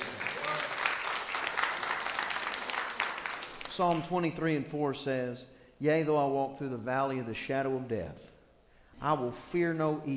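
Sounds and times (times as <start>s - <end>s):
audience applauding: 0.0s - 4.0s
speech: 3.8s - 8.3s, 9.0s - 10.1s.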